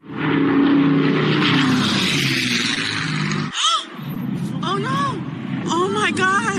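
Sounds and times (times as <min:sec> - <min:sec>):
B-17 Flying Fortress and Bell P-63 King Cobra propeller engines droning overhead: 0:00.0 - 0:06.5.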